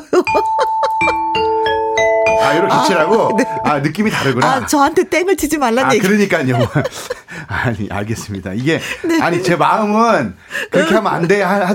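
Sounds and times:
bright ding-dong-dang success chime with bell-like notes: 0.3s - 4.5s
laughter: 2.4s - 4.8s, 5.9s - 11.7s
speech: 2.5s - 11.7s.

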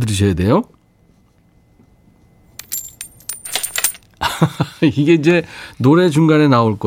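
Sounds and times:
speech: 0.0s - 0.8s, 4.4s - 6.8s
coins clattering onto a hard surface: 2.6s - 4.2s
laughter: 4.2s - 4.9s.

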